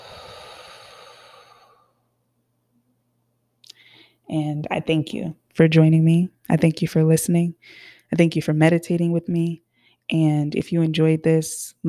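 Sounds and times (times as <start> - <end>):
deep slow breath in through nose and out through mouth: 0.0 - 2.1, 3.7 - 4.2, 7.6 - 8.1, 9.7 - 10.0
speech: 4.3 - 11.8.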